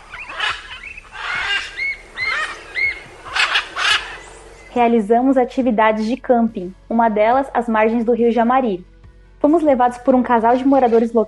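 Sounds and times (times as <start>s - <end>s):
blue-and-yellow macaws squawking: 0.0s - 4.7s
speech: 4.8s - 11.2s.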